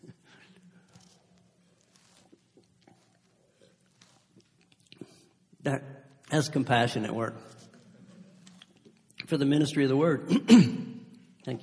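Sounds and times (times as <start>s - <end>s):
person sipping a drink of water: 0.1s - 5.5s
speech: 5.6s - 7.6s, 9.3s - 11.6s.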